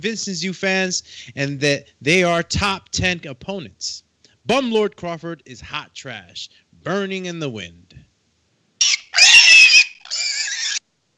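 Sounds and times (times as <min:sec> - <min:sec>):
speech: 0:00.0 - 0:07.8
pig oinking and squealing: 0:08.8 - 0:10.8.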